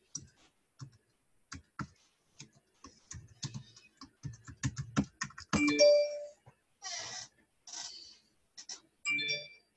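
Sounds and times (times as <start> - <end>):
tapping and clicking: 0.2 - 5.8
bright electronic bell ringing: 5.6 - 6.4, 9.1 - 9.7.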